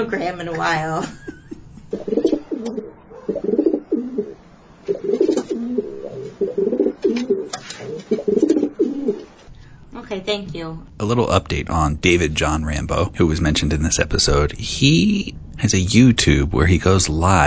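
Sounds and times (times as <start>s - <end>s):
speech: 0.0s - 1.3s, 1.9s - 3.6s, 10.2s - 17.4s
laughter: 0.3s - 1.9s
pigeon cooing: 1.9s - 9.3s.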